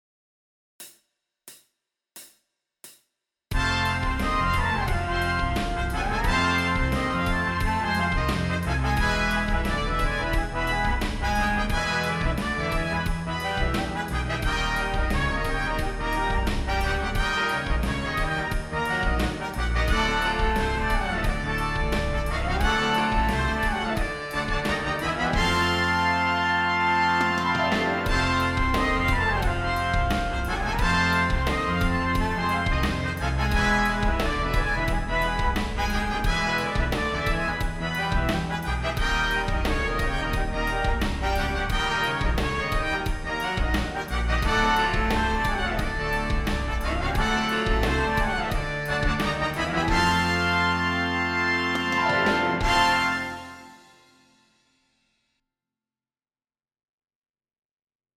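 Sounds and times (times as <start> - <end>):
three horns playing lip slurs in fifths: 3.5 - 53.9.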